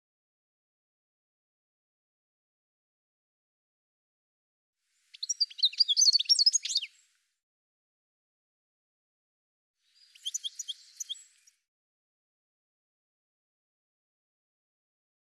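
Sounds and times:
bird chirping: 5.0 - 7.2, 9.8 - 11.7.

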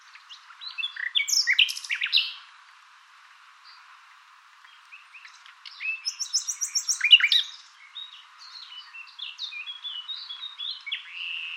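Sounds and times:
bird chirping and twittering: 0.1 - 2.4, 4.6 - 11.5.

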